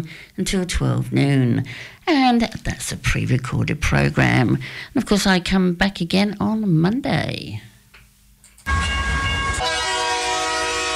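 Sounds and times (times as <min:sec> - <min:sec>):
speech: 0:00.0 - 0:07.7
train rumbling with rolling clatter: 0:08.7 - 0:10.9.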